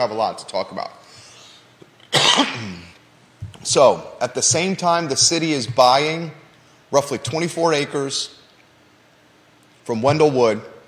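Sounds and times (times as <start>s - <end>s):
speech: 0.0s - 1.0s, 2.4s - 2.9s, 3.6s - 8.4s, 9.9s - 10.7s
loud raspy cough: 2.1s - 2.9s.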